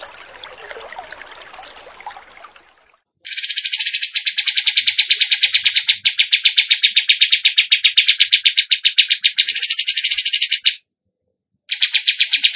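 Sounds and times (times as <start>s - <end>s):
bird in full song chirping and trilling: 3.3s - 10.8s, 11.7s - 12.5s.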